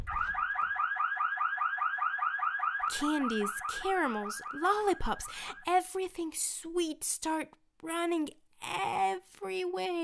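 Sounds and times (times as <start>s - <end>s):
electronic alarm wailing in rising sweeps: 0.0s - 5.7s
speech: 2.9s - 10.0s.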